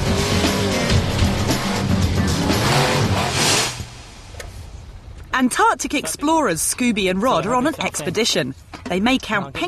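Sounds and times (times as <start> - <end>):
methane-powered supercharged monster truck engine roaring: 0.0 - 4.0
speech: 5.4 - 9.6.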